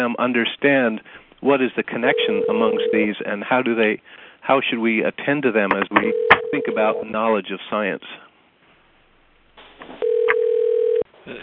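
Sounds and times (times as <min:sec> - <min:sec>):
speech: 0:00.0 - 0:08.2
phone ringing with a single electronic tone: 0:02.1 - 0:03.1, 0:05.7 - 0:07.0, 0:10.0 - 0:11.1.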